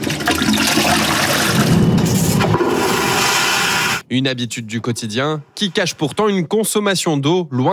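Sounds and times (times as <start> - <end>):
toilet flushing: 0.0 - 4.0
speech: 4.1 - 7.7.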